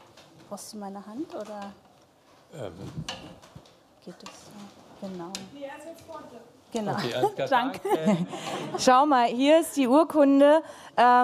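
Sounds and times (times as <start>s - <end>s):
speech: 0.5s - 1.9s, 2.5s - 11.2s
wooden chair scraping and knocking as it is shifted into place: 2.6s - 5.5s.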